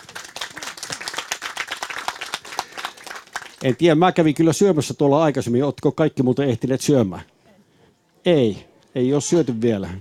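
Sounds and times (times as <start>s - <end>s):
audience applause: 0.0s - 3.8s
speech: 3.6s - 7.3s, 8.2s - 9.9s.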